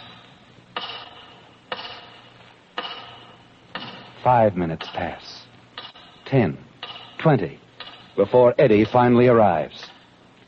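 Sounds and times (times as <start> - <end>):
big tower clock ticking with an echo: 2.8 - 10.1
speech: 4.2 - 5.4, 6.3 - 6.6, 7.2 - 7.6, 8.2 - 9.8.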